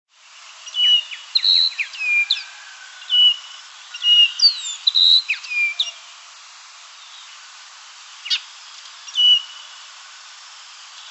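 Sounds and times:
steady background hiss: 0.1s - 11.1s
baywing calls of whistled notes and quick chirps: 0.7s - 2.5s, 4.0s - 6.0s, 9.1s - 9.6s.

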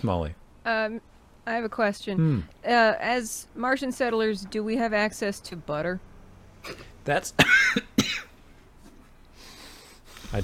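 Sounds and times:
speech: 0.0s - 8.2s
person coughing: 6.6s - 8.3s.

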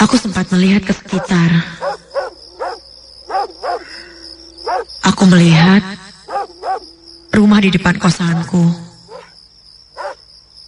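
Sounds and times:
speech: 0.0s - 2.0s, 5.1s - 5.9s, 7.4s - 8.8s
neighbour's dog barking across the street: 1.1s - 4.0s, 4.6s - 4.9s, 6.3s - 6.9s, 9.1s - 10.6s.

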